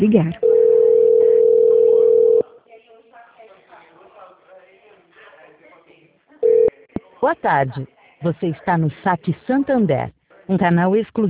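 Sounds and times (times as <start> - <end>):
speech: 0.0 - 0.4, 7.2 - 11.2
telephone busy tone: 0.4 - 2.4, 6.4 - 6.8
recorded voice talking quietly: 6.7 - 11.2.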